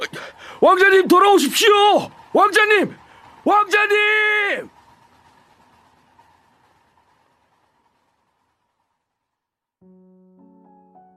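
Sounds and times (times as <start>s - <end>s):
train starting to move: 0.0s - 11.1s
speech: 0.6s - 4.8s
sustained musical tones: 9.8s - 11.1s.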